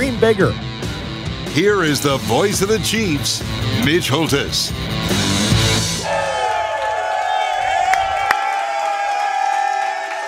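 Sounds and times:
speech: 0.2 - 0.7, 1.6 - 5.2
excited crowd cheering and whooping: 5.9 - 10.2.

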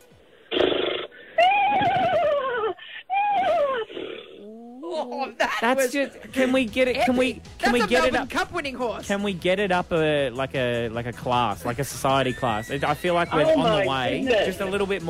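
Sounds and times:
person imitating a posh horse neigh with their voice: 0.5 - 4.9, 12.1 - 13.9
speech: 5.0 - 15.0.

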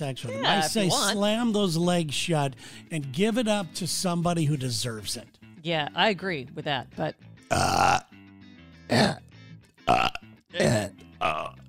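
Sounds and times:
speech: 0.0 - 8.0
loud burps in a burping contest: 7.5 - 8.2, 8.9 - 11.6.

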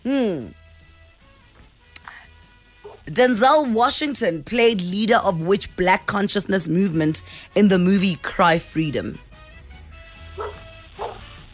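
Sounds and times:
dog barking: 2.8 - 3.1, 10.3 - 11.4
speech: 3.1 - 9.2.

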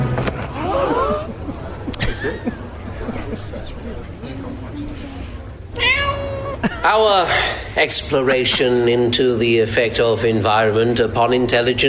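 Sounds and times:
faint murmur: 0.0 - 11.8
laughter: 0.5 - 4.4, 6.5 - 7.4
cat meowing: 5.7 - 6.6
speech: 6.8 - 11.8.

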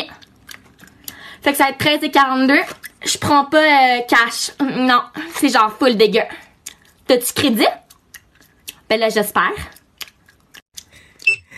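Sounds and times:
loud wet gum chewing: 0.0 - 1.3, 6.5 - 7.1, 7.7 - 8.9, 9.6 - 11.5
speech: 1.4 - 6.4, 7.1 - 7.8, 8.9 - 9.8.

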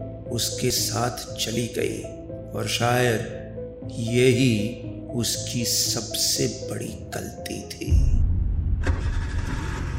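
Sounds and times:
speech: 0.3 - 8.2
car engine starting: 8.6 - 9.9.

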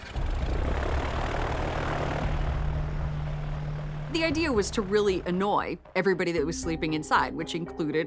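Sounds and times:
single-engine propeller airplane flying over a ranch in Florida: 0.0 - 5.9
speech: 4.1 - 8.0.

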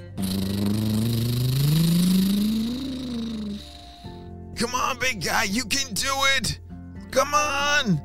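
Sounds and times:
monster truck engine revving at full throttle climbing a giant muddy hill: 0.1 - 3.7
speech: 4.6 - 8.0.

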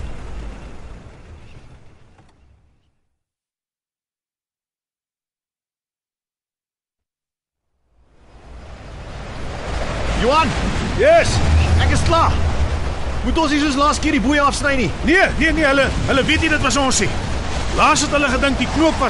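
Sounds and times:
waves breaking in a rough sea: 0.0 - 2.8, 8.0 - 19.0
speech: 10.2 - 12.4, 13.2 - 17.2, 17.8 - 19.0.

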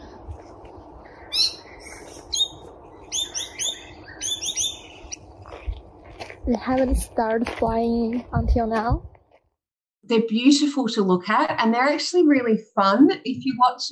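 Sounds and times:
colony of bats chirping shrilly: 1.2 - 5.2
speech: 6.5 - 9.1, 10.1 - 13.9.

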